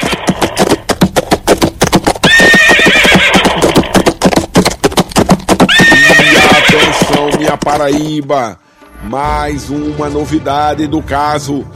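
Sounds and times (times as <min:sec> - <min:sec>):
horse letting out a loud drawn-out whinny: 0:00.0 - 0:00.6, 0:02.2 - 0:04.1, 0:05.6 - 0:07.7
steady rapid clatter of hooves: 0:00.0 - 0:08.2
speech: 0:07.7 - 0:11.7.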